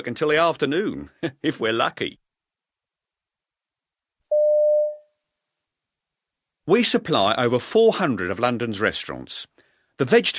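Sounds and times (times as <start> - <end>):
speech: 0.0 - 2.2, 6.7 - 10.3
telephone tone: 4.3 - 5.0.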